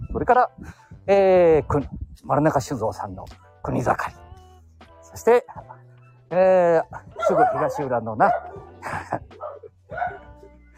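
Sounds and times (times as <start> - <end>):
speech: 0.2 - 4.2, 5.2 - 9.2
dog barking: 7.1 - 8.8, 9.4 - 10.4.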